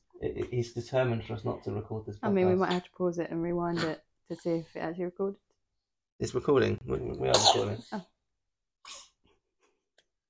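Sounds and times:
speech: 0:00.2 - 0:05.5, 0:06.2 - 0:08.1
person sneezing: 0:07.4 - 0:07.8.

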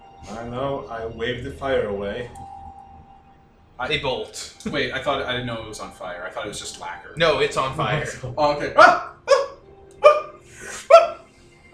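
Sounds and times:
speech: 0:00.2 - 0:02.6, 0:03.8 - 0:09.1
small terrier yapping: 0:08.8 - 0:11.2.

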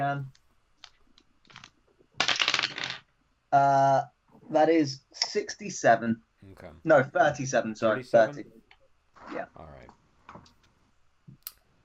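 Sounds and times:
speech: 0:00.0 - 0:00.4, 0:03.5 - 0:08.6, 0:09.2 - 0:10.5
percentile dice clattering and rolling across a hard surface: 0:00.8 - 0:03.2.

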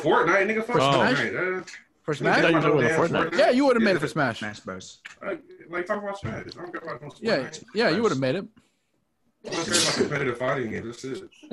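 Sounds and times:
speech: 0:00.0 - 0:08.7, 0:09.4 - 0:11.5
loud sneeze: 0:09.5 - 0:10.1.

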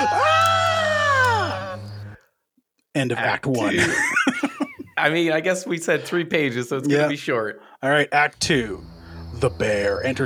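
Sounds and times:
person screaming in fright: 0:00.0 - 0:02.1
speech: 0:03.0 - 0:04.4, 0:05.0 - 0:10.2
laughter: 0:03.6 - 0:07.2.

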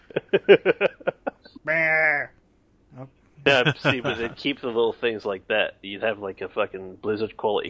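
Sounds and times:
laughter: 0:00.0 - 0:01.4, 0:03.5 - 0:07.6
speech: 0:00.3 - 0:00.9, 0:03.5 - 0:07.6
sheep bleating: 0:01.7 - 0:02.3.

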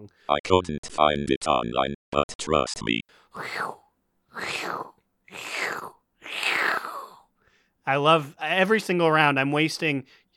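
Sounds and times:
speech: 0:00.0 - 0:03.8, 0:04.4 - 0:07.0, 0:07.9 - 0:10.2
voice imitating crunchy leaf attack sound with breathy hissing bursts: 0:03.3 - 0:07.2.

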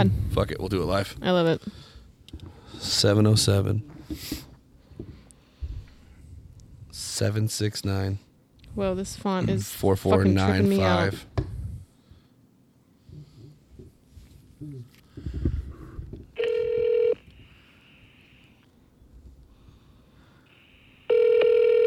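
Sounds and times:
speech: 0:00.0 - 0:04.5, 0:07.2 - 0:11.5
phone ringback tone through a speakerphone: 0:16.4 - 0:17.2, 0:20.6 - 0:21.8.

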